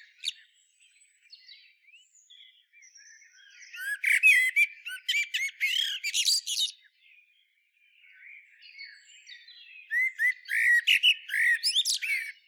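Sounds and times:
common blackbird Turdus merula twittering: 0:00.0 - 0:00.4, 0:03.4 - 0:06.8, 0:09.9 - 0:12.4.

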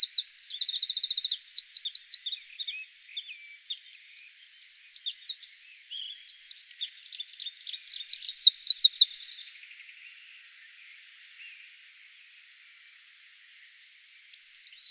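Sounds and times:
Eurasian wren Troglodytes troglodytes singing: 0:00.0 - 0:10.2, 0:14.3 - 0:14.8.

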